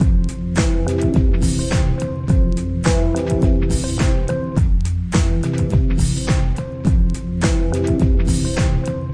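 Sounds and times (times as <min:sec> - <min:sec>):
sampled music loop with full melody, harmony and drums: 0:00.0 - 0:09.1.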